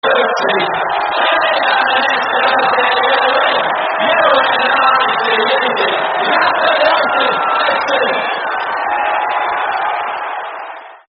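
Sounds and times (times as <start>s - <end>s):
football terrace crowd chanting: 0.0s - 11.0s.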